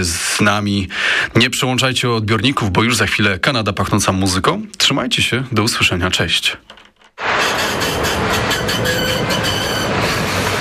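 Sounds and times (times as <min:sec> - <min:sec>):
speech: 0:00.0 - 0:06.8
rhythmic rail clatter: 0:06.7 - 0:10.5
faint metallic squeals of a departing tram: 0:07.2 - 0:10.5
tram departing: 0:07.2 - 0:10.5.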